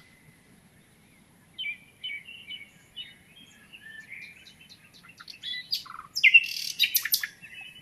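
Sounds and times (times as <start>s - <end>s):
common nightingale Luscinia megarhynchos song: 1.6s - 7.7s.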